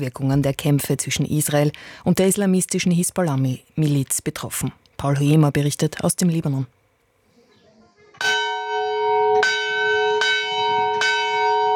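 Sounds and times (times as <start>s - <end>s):
speech: 0.0s - 6.8s
monastery church bells ringing: 8.2s - 11.7s.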